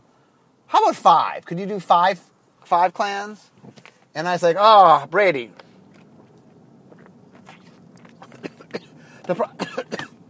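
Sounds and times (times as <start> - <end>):
speech: 0.9 - 3.5, 4.2 - 5.6, 9.3 - 10.0
harsh coughs: 8.2 - 10.2.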